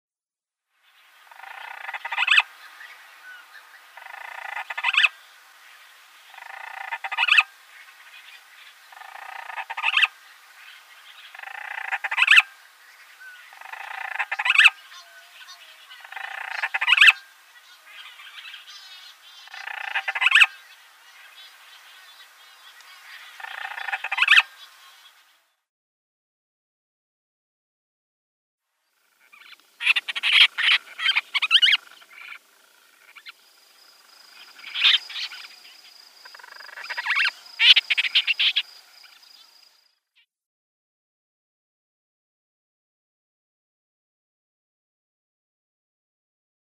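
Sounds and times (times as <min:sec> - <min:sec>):
Madeiran storm petrel calling: 0:01.2 - 0:05.3, 0:06.2 - 0:25.2, 0:29.2 - 0:33.4, 0:34.0 - 0:39.5.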